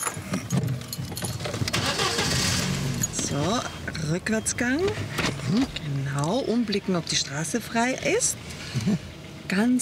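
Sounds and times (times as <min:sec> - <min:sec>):
car key clicking and jangling as it is turned: 0:00.0 - 0:02.1, 0:02.9 - 0:03.4
car engine cranking, catching and idling: 0:00.9 - 0:09.4
speech: 0:03.3 - 0:09.8.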